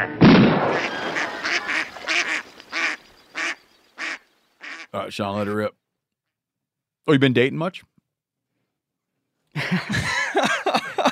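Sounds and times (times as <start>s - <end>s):
speech: 0.0s - 1.0s, 4.9s - 5.8s, 7.1s - 7.9s, 9.6s - 10.9s
laughter: 0.7s - 2.4s, 9.6s - 11.0s
duck quacking: 0.7s - 4.9s.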